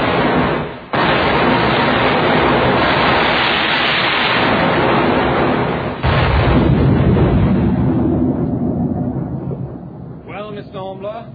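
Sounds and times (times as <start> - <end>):
ship's cannon firing from a sailing warship: 0.0 - 11.3.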